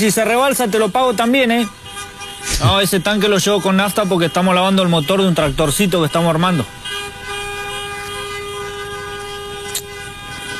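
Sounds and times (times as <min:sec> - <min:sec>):
speech: 0:00.0 - 0:01.8, 0:02.5 - 0:06.8
traffic noise: 0:00.0 - 0:10.5
car horns honking from cars queued at a fuel pump: 0:00.7 - 0:10.5.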